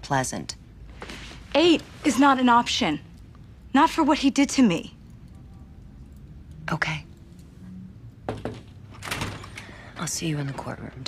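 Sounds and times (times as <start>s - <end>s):
speech: 0.0s - 0.6s, 1.5s - 3.1s, 3.7s - 5.0s, 6.7s - 7.0s, 10.0s - 11.0s
low hum: 0.0s - 11.0s
knocking on door: 8.3s - 8.7s
door opening: 8.3s - 11.0s.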